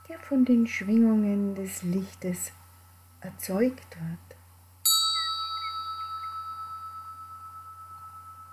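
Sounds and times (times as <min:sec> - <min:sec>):
speech: 0:00.1 - 0:02.6, 0:03.2 - 0:04.4
single bell struck and ringing with long reverberation: 0:04.9 - 0:08.5.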